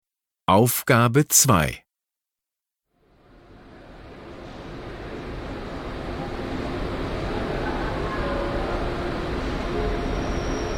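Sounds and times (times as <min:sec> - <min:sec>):
speech: 0:00.5 - 0:01.8
Intercity Express train rumbling into a station platform: 0:03.5 - 0:10.7.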